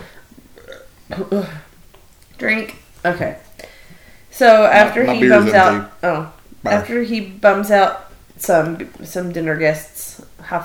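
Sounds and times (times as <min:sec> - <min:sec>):
deep throaty burp: 0:00.6 - 0:01.3, 0:05.1 - 0:05.9
speech: 0:01.1 - 0:01.7, 0:02.4 - 0:03.5, 0:04.4 - 0:10.6
quiet breathy murmuring: 0:04.7 - 0:05.9.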